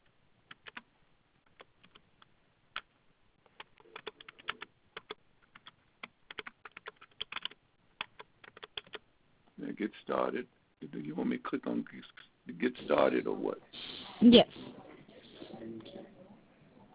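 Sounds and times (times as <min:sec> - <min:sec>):
typing on a computer keyboard: 0:00.5 - 0:00.9, 0:01.5 - 0:02.9, 0:03.5 - 0:09.0
speech: 0:09.8 - 0:14.6.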